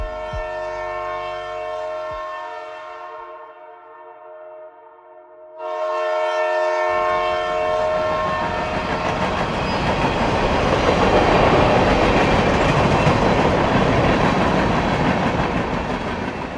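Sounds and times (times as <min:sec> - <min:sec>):
train horn blaring: 0:00.0 - 0:09.2
train cars rolling past on railroad tracks: 0:07.0 - 0:16.5.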